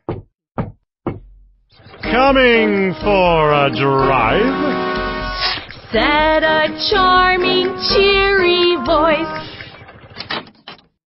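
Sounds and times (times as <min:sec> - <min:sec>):
knocking on a wooden front door: 0:00.0 - 0:01.3
speech: 0:01.8 - 0:04.9, 0:05.9 - 0:09.5.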